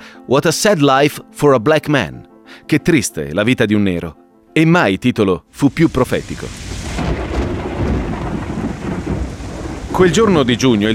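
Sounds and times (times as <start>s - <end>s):
speech: 0.3s - 7.2s, 10.0s - 10.9s
heavy pouring rain on a June winter day in Australia: 5.6s - 10.9s.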